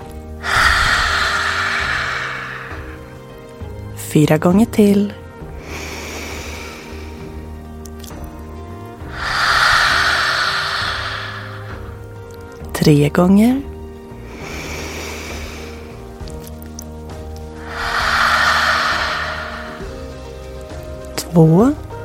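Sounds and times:
breathing in through the nose in a relaxation exercise: 0:00.3 - 0:03.6, 0:05.5 - 0:07.6, 0:09.0 - 0:12.1, 0:14.2 - 0:16.4, 0:17.6 - 0:20.8
forceful breathy exhale through open mouth with tongue out: 0:00.4 - 0:03.4, 0:05.6 - 0:07.4, 0:09.1 - 0:12.1, 0:14.3 - 0:16.0, 0:17.6 - 0:20.4
speech: 0:04.1 - 0:05.2, 0:12.8 - 0:13.7, 0:21.4 - 0:21.8.

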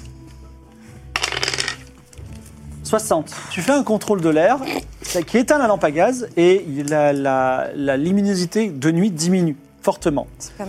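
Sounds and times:
dice rolling across a table: 0:01.2 - 0:01.9
speech: 0:02.9 - 0:10.6.

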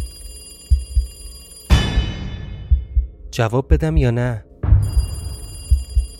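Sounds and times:
telephone bell ringing: 0:00.0 - 0:02.0, 0:04.8 - 0:06.1
soft low thuds: 0:01.7 - 0:06.1
speech: 0:03.4 - 0:04.5.

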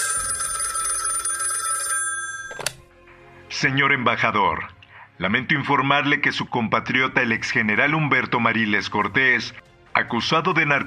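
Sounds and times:
telephone bell ringing with a bright metallic trill: 0:00.0 - 0:02.7
speech: 0:03.6 - 0:10.8.

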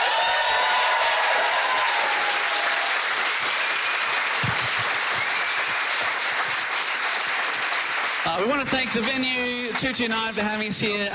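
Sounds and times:
live audience clapping: 0:00.0 - 0:11.1
whistles from live audience: 0:03.4 - 0:06.3
speech: 0:08.3 - 0:11.1.

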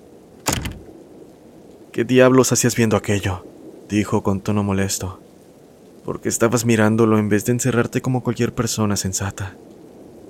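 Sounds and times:
door slamming shut: 0:00.4 - 0:00.9
speech: 0:02.0 - 0:05.3, 0:06.0 - 0:09.7.

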